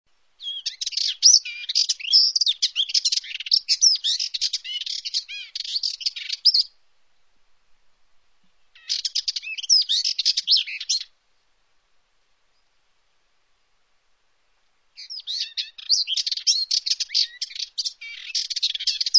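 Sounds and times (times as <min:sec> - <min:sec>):
bird chirps and twitters: 0:00.4 - 0:06.7, 0:08.8 - 0:11.1, 0:15.0 - 0:19.1.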